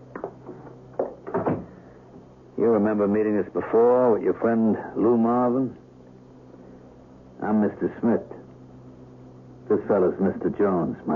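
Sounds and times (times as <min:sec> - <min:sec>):
low steady hum: 0:00.0 - 0:11.1
door swinging shut with latch click and rattle in its frame: 0:00.5 - 0:01.8
speech: 0:02.6 - 0:05.8, 0:07.4 - 0:08.4, 0:09.7 - 0:11.1.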